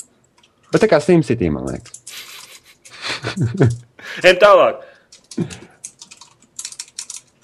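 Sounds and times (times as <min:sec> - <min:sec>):
typing on a computer keyboard: 0:00.0 - 0:00.9, 0:01.7 - 0:03.0, 0:05.0 - 0:07.4
speech: 0:00.7 - 0:02.0, 0:03.3 - 0:05.6
laughter: 0:02.1 - 0:03.8.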